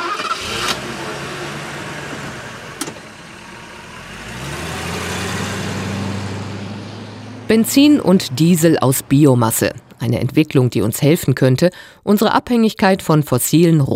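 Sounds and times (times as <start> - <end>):
car engine cranking and catching: 0.0 - 11.0
speech: 7.5 - 13.9.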